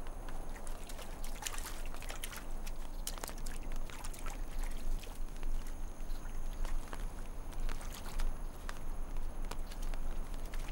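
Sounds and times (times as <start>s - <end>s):
nature ambience: 0.0s - 10.7s.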